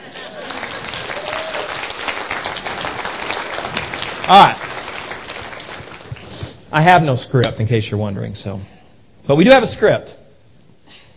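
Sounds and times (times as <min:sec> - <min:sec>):
audience applause: 0:00.0 - 0:06.4
speech: 0:04.3 - 0:04.6, 0:06.7 - 0:10.2.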